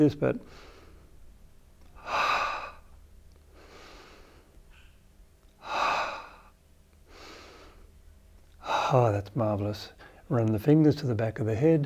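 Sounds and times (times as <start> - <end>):
speech: 0.0 - 0.7, 8.9 - 11.8
deep breathing into the top of the chest during a stretching exercise: 0.4 - 1.3, 1.9 - 5.0, 5.6 - 8.0, 8.6 - 9.2, 9.9 - 10.3.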